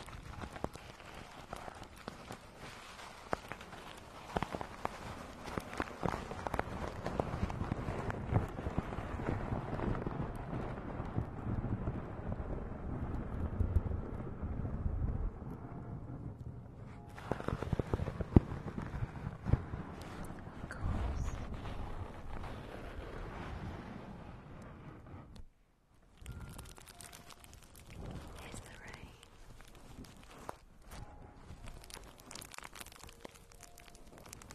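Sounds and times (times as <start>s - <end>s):
faint crackling: 0.0s - 34.5s
deep thunder rolling and rumbling: 8.3s - 16.4s.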